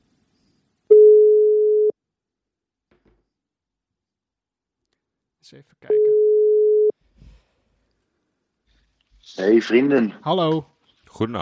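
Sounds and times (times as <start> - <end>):
telephone ringback tone of outgoing call: 0.9 - 1.9, 5.9 - 6.9
speech: 5.5 - 6.3, 9.4 - 11.4.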